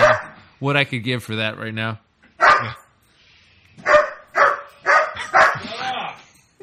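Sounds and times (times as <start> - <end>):
dog barking: 0.0 - 0.4, 2.4 - 2.8, 3.8 - 5.8
speech: 0.6 - 2.0, 2.6 - 2.8.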